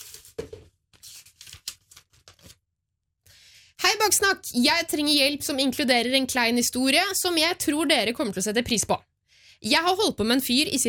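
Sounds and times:
paper note rustling and crinkling as it is unfolded: 0.0s - 2.6s
speech: 3.9s - 10.8s.

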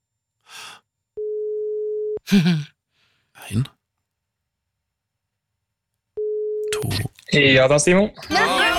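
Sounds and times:
breathy exhale: 0.4s - 0.8s
speech: 2.3s - 2.7s, 3.4s - 3.8s, 6.8s - 8.6s
phone ringback tone: 6.2s - 6.7s.

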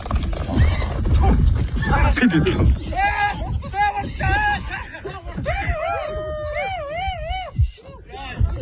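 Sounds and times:
captured wild horse whinnying: 0.3s - 2.8s
laughter: 2.2s - 8.6s.

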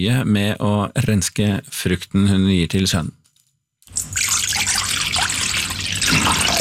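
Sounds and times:
speech: 0.0s - 3.2s
water pouring into a metal bowl for washing berries: 3.9s - 6.5s.

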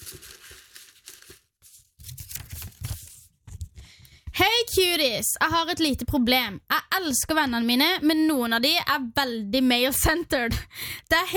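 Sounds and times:
paper rustling as a slip is drawn from a pile of notes: 0.0s - 3.8s
speech: 4.4s - 11.3s.

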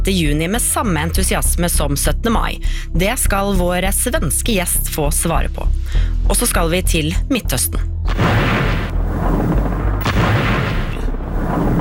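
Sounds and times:
speech: 0.0s - 8.4s
bombing of a city, continuous heavy roar with deep rumbling: 8.1s - 11.7s
sharp explosion booms from bombing: 8.1s - 11.7s.

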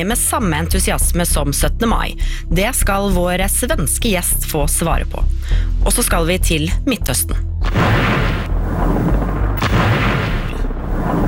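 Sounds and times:
speech: 0.0s - 8.1s
airstrike bombing explosions in Beirut: 7.6s - 11.2s
sharp airstrike blast: 7.6s - 11.2s.

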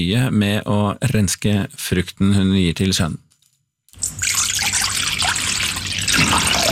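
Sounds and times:
speech: 0.0s - 3.2s
half a litre of water pouring into a metal bowl: 4.0s - 6.7s.

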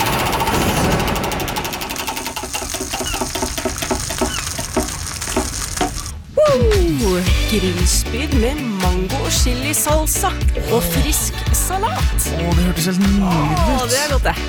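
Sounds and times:
prize wheel for grilling tips spinning and clicking on its stand: 0.0s - 6.2s
speech: 7.5s - 14.4s.

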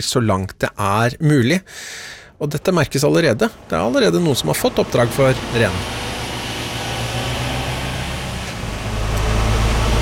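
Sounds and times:
speech: 0.0s - 6.1s
heavy truck engine rumbling driving in through industrial gates: 2.4s - 10.0s.

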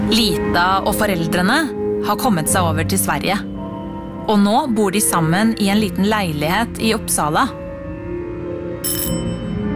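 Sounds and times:
speech: 0.1s - 3.5s, 4.3s - 7.6s
doorbell ringing in a small apartment: 8.8s - 9.7s.

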